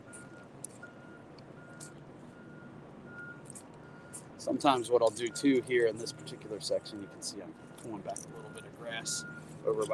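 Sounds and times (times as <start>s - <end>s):
construction truck reversing alarm beeping: 0.0s - 9.9s
low rumble of engines: 0.0s - 9.9s
outdoor noise: 0.0s - 9.9s
speech: 4.4s - 9.9s.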